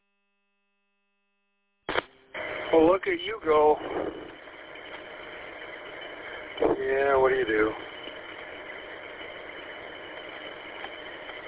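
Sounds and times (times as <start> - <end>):
small tractor engine idling while fixing up a driveway: 2.4 - 11.4
speech: 2.7 - 4.4, 6.9 - 7.9.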